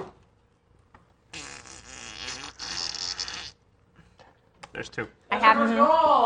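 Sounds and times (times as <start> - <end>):
long raspy fart: 1.3 - 3.6
speech: 4.8 - 6.2.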